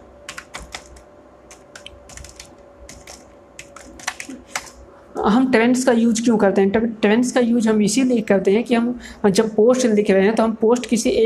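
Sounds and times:
typing a web address on a computer keyboard: 0.2s - 4.8s, 10.7s - 11.2s
speech: 5.2s - 11.2s.

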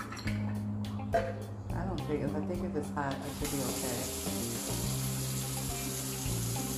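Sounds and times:
speech: 1.1s - 5.2s
water running from a tap into a sink: 3.3s - 6.7s.

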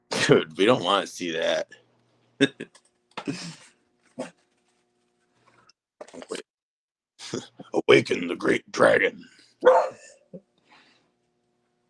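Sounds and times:
speech: 0.3s - 1.8s, 2.4s - 3.6s, 7.3s - 10.4s
female dog barking: 9.6s - 10.1s.

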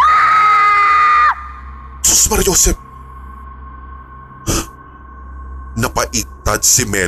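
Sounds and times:
shrill scream over the phone line: 0.0s - 1.7s
speech: 2.3s - 2.8s, 6.5s - 7.0s.

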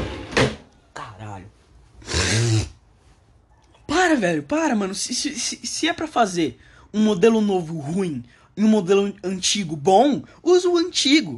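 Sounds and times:
window sliding open with a scraping rush: 0.0s - 0.6s
person sneezing loudly: 2.0s - 2.8s
speech: 4.2s - 11.3s.

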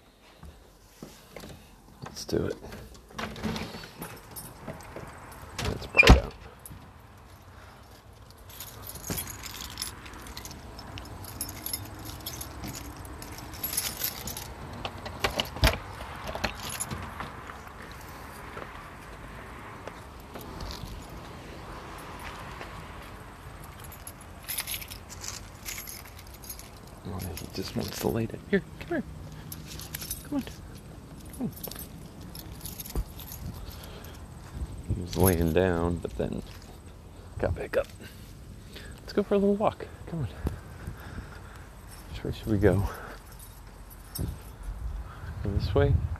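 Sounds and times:
rustling and shuffling movement: 0.0s - 39.0s, 40.2s - 45.0s
speech: 2.2s - 3.5s, 28.0s - 29.2s, 35.6s - 36.6s, 37.4s - 38.2s, 39.2s - 40.5s, 42.2s - 43.0s, 45.7s - 46.1s
keys jangling: 4.0s - 18.6s, 20.2s - 21.3s, 23.5s - 28.4s, 29.1s - 35.7s, 41.4s - 45.0s.

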